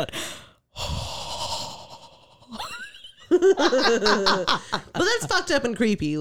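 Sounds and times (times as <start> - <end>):
speech: 0.0 - 0.9, 3.4 - 6.1
person imitating heavy breathing: 0.0 - 2.8
laughter: 2.5 - 5.9.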